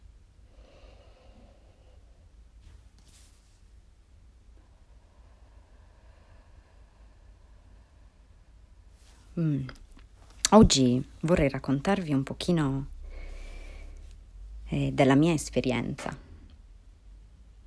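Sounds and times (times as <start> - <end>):
steady low hum: 0.0 - 17.6
slow deep breath in and out: 0.3 - 2.5, 4.6 - 9.4, 12.9 - 14.6
speech: 9.4 - 9.8, 10.5 - 12.9, 14.7 - 16.2.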